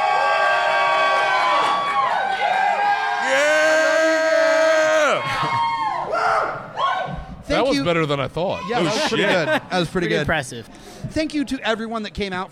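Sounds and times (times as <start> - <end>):
people imitating a roaring crowd, whooping and cheering at a beer release event: 0.0 - 7.3
laughter: 5.0 - 6.0, 8.6 - 10.3
speech: 7.6 - 12.5.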